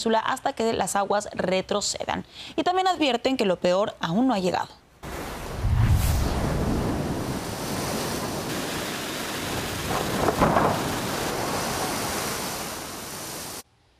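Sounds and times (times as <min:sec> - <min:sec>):
speech: 0:00.0 - 0:04.8
heavy ocean surf roaring with churning water: 0:05.0 - 0:13.6
powerful ocean waves crashing against shore: 0:05.0 - 0:13.6.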